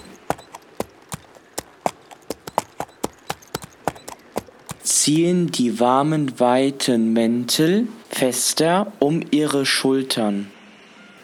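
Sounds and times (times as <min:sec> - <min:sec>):
horses' hooves clip-clopping: 0:00.0 - 0:05.2
speech: 0:05.0 - 0:10.6.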